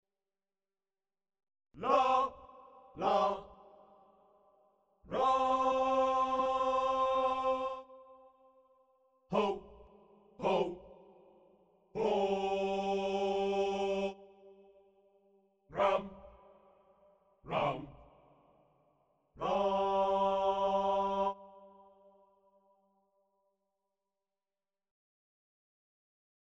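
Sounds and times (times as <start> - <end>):
tavern singers: 1.8 - 4.0, 5.1 - 8.3, 9.3 - 14.8, 15.7 - 16.4, 17.5 - 18.0, 19.4 - 21.9.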